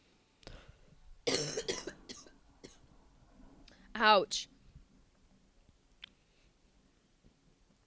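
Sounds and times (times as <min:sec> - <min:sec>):
person coughing: 0:01.3 - 0:02.8
speech: 0:04.0 - 0:04.5.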